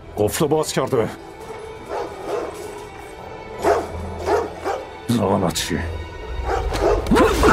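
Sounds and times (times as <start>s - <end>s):
speech: 0.2s - 1.3s, 5.1s - 6.1s
dogs barking: 1.4s - 2.9s, 3.6s - 5.0s, 6.4s - 7.4s.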